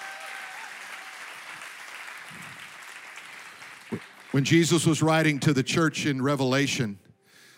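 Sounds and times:
church audience applauding: 0:00.0 - 0:05.1
speech: 0:03.9 - 0:07.0.

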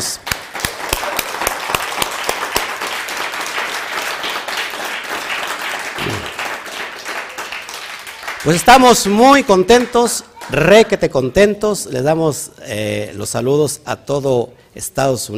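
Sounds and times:
sharp individual claps: 0:00.0 - 0:10.7
crowd applauding: 0:00.2 - 0:10.8
speech: 0:08.4 - 0:15.3.

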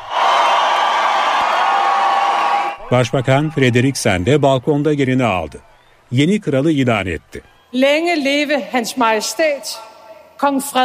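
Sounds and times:
huge crowd cheering and shouting outside a palace in freezing cold: 0:00.0 - 0:07.8
speech: 0:02.9 - 0:10.8.

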